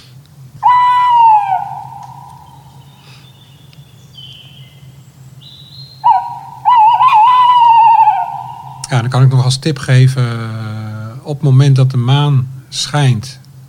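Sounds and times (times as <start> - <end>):
steady low hum: 0.0 - 13.6
tawny owl hooting: 0.6 - 9.6
speech: 8.9 - 13.4.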